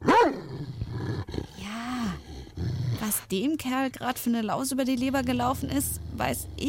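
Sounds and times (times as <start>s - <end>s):
dog growling and snarling in a bad mood: 0.0s - 3.3s, 4.8s - 6.6s
speech: 3.2s - 6.6s.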